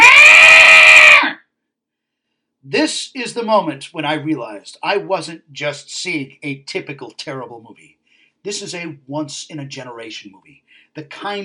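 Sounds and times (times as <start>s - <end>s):
many cats wailing together as an audience in a film scene: 0.0s - 1.4s
speech: 2.7s - 11.4s.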